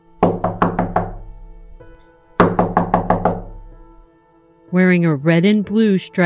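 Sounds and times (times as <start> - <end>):
firm knocking on a wooden door: 0.2 - 1.3, 2.4 - 3.6
speech: 4.7 - 6.2.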